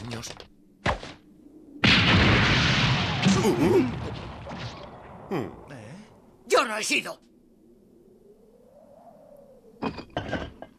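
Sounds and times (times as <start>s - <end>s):
speech: 0.2s - 0.5s, 3.4s - 4.1s, 5.3s - 5.6s, 6.5s - 7.3s
grenade explosion: 1.8s - 5.7s
person crying out: 3.3s - 4.0s.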